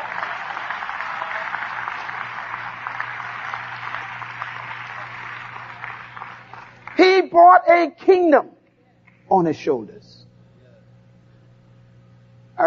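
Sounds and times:
crowd clapping hands: 0.0 - 7.5, 9.0 - 9.3
speech: 7.3 - 8.6, 9.3 - 10.2.

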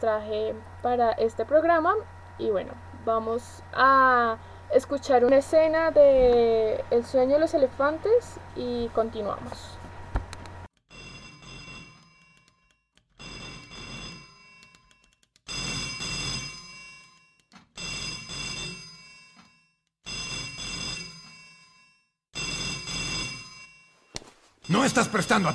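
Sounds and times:
speech: 0.0 - 9.7, 24.8 - 25.5
telephone ringing in a short film scene: 10.9 - 25.5.

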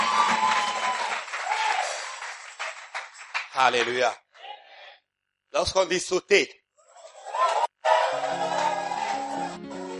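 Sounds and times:
congregation applauding during a church service: 0.0 - 4.2, 7.3 - 9.9
speech: 3.6 - 4.2, 5.5 - 6.6.

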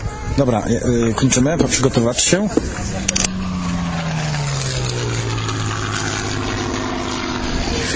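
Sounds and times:
WWI biplane propeller engine flying overhead: 0.0 - 7.9
speech: 0.4 - 3.2.

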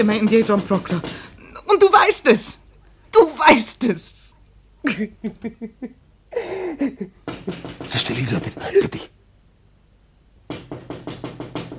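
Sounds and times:
knocking on a window: 0.0 - 1.3, 7.2 - 9.1, 10.4 - 11.7
speech: 0.0 - 9.2.

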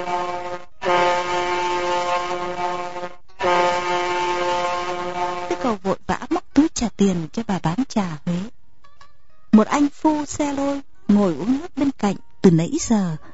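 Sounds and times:
ship horn blowing long low blasts: 0.0 - 5.9
speech: 5.6 - 8.6, 9.6 - 13.3.

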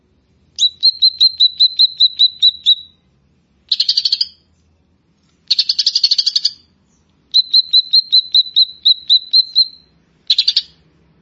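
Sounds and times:
grey-cheeked bulbul buzzy trill, whistled notes and chattering: 0.6 - 3.0, 3.7 - 4.5, 5.5 - 10.8.

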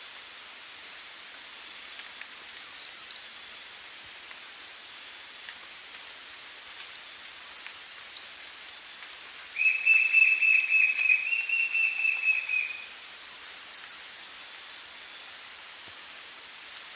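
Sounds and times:
White-shouldered fire-eye Pyriglena leucoptera song: 1.9 - 3.5, 7.0 - 8.6, 9.6 - 14.4.

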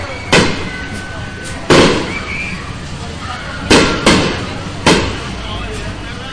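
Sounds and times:
steady noise: 0.0 - 6.3
stick rockets launched at a town patronal festival: 0.1 - 2.6, 3.5 - 5.5.

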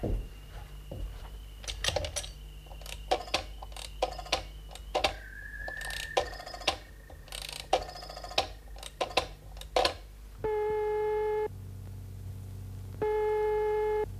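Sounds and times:
steady electronic telephone line tones: 0.0 - 11.5, 12.9 - 14.1
telephone being dialled with sharp clicks: 1.6 - 5.2, 6.1 - 10.0.

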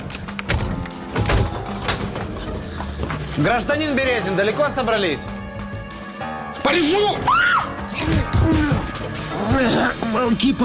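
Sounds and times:
door being opened: 0.4 - 2.3
speech: 3.4 - 5.4, 6.6 - 8.7, 9.4 - 10.6.

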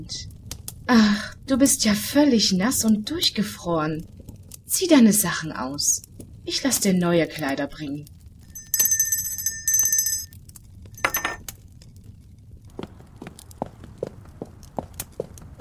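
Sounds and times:
speech: 0.0 - 8.2
hand bell rung to summon a servant: 8.6 - 10.3, 11.0 - 11.4
short clink: 8.6 - 10.3, 11.0 - 11.4.

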